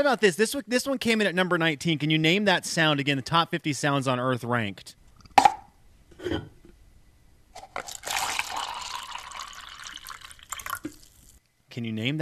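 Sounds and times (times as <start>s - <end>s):
speech: 0.0s - 5.0s, 6.2s - 6.6s, 11.7s - 12.1s
coffee pouring into a cup: 7.8s - 11.4s.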